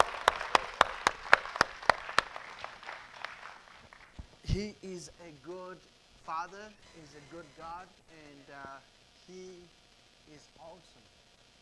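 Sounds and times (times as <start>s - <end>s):
audience applause: 0.0s - 4.2s
sharp evenly spaced rhythmic hand claps: 0.0s - 4.4s
speech: 4.5s - 11.1s.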